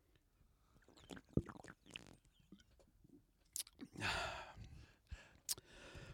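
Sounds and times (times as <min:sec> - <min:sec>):
person gulping a mango-flavoured lager beer: 0:00.8 - 0:02.8, 0:03.5 - 0:04.0.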